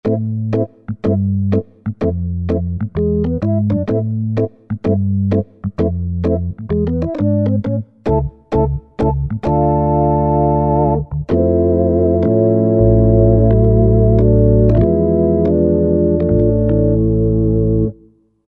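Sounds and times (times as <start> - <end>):
vintage Juno60 synthesizer organ: 0.0 - 18.3.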